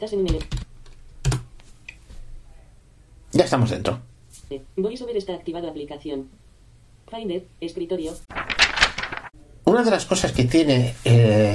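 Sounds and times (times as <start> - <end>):
speech: 0.0 - 0.6, 3.4 - 6.4, 7.1 - 8.6, 9.7 - 11.5
typing a password on a computer keyboard: 0.2 - 1.5.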